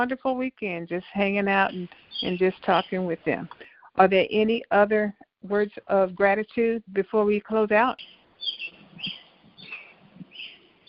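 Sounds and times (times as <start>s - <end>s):
speech: 0.0s - 8.6s
birds chirping: 1.0s - 4.5s, 7.8s - 10.8s.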